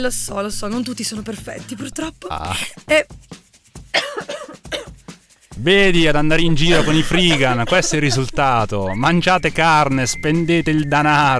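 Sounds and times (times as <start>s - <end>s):
speech: 0.0s - 3.4s, 5.6s - 11.3s
person coughing: 4.0s - 5.0s, 6.6s - 8.4s
laughter: 6.0s - 11.0s.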